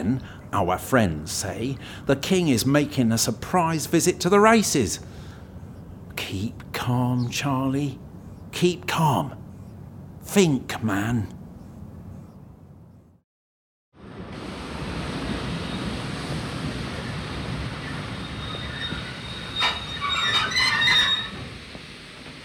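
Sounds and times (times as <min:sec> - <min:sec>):
speech: 0:00.0 - 0:05.2, 0:06.2 - 0:09.4, 0:10.3 - 0:11.4
train at a station platform with hissing rumble: 0:00.0 - 0:08.6, 0:14.0 - 0:22.4
high metallic squeals: 0:17.8 - 0:21.5.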